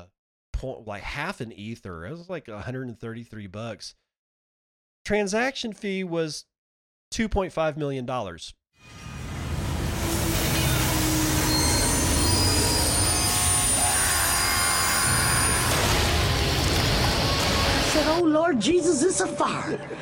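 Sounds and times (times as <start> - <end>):
speech: 0.6 - 4.0, 5.0 - 6.5, 7.1 - 9.0, 18.0 - 20.0
train wheels screeching against the rails in a train-wreck sound effect: 8.8 - 18.0
laughter: 19.5 - 20.0.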